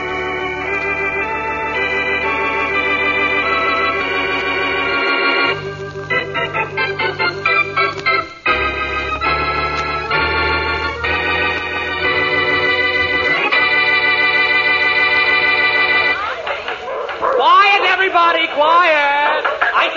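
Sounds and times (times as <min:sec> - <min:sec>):
sustained brassy chord: 0:00.0 - 0:16.2
dogs yapping and yelping at a dog show: 0:16.7 - 0:18.1, 0:19.0 - 0:19.8.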